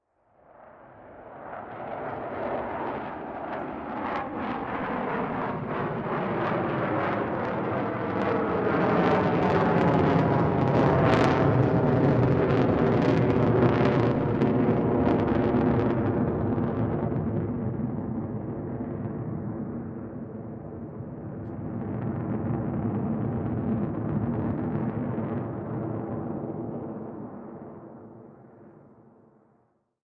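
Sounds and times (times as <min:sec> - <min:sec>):
F/A-18 jet flyby: 0:00.3 - 0:29.0.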